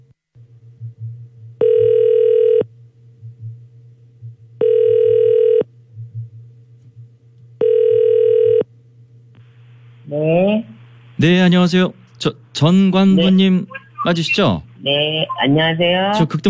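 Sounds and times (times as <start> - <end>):
low hum: 0.0 - 16.4
outgoing phone call ringback tone: 1.6 - 2.6, 4.6 - 5.6, 7.6 - 8.6
speech: 11.2 - 16.4.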